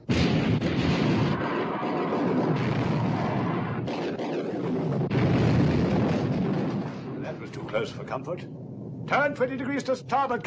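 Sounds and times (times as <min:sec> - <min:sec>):
naval turret guns opening fire: 0:00.0 - 0:08.0
speech: 0:07.8 - 0:10.4.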